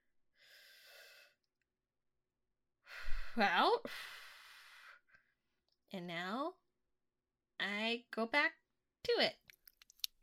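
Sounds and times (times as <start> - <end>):
deep inhale: 2.9 - 5.1
speech: 3.4 - 4.1, 5.9 - 6.6, 7.6 - 9.5.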